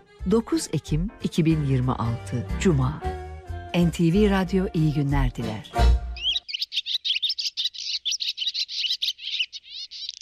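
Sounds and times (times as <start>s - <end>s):
speech: 0.2s - 3.1s, 3.7s - 6.0s
birds chirping and singing: 5.4s - 10.2s.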